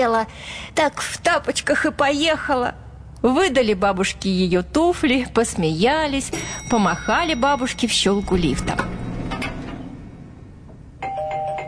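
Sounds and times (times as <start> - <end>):
speech: 0.0 - 9.0
dull noise: 0.0 - 11.6
electronic doorbell chime at a flat's front door: 6.3 - 10.2, 11.0 - 11.6.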